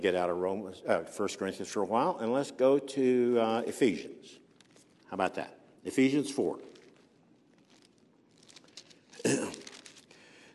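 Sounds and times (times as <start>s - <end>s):
speech: 0.0s - 4.4s, 5.1s - 6.7s
Bible pages turning and rustling: 4.5s - 5.1s, 6.2s - 10.3s.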